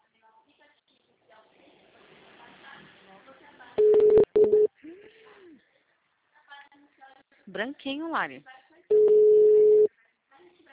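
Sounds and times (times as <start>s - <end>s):
electronic telephone tone of an unanswered call going to voicemail: 3.8s - 4.7s, 8.9s - 9.9s
speech: 7.5s - 8.6s.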